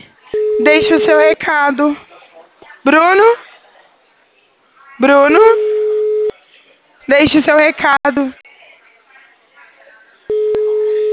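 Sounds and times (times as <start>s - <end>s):
low noise: 0.0s - 11.1s
steady mid-pitched electronic telephone line tone while placing a call: 0.4s - 1.3s, 5.4s - 6.3s, 10.3s - 11.1s
speech: 0.6s - 2.1s, 2.8s - 3.4s, 5.0s - 5.7s, 7.1s - 8.4s.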